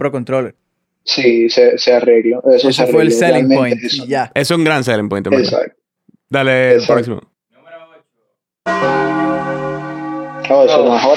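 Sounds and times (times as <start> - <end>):
speech: 0.0 - 7.3, 10.5 - 11.1
deep video game bell tolling for in-game day change: 8.7 - 11.1.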